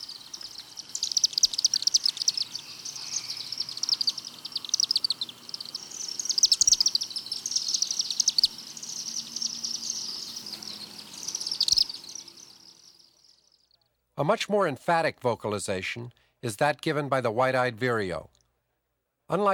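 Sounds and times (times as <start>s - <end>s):
chimney swift call given in flight: 0.0s - 13.8s
speech: 14.2s - 18.3s, 19.3s - 19.5s.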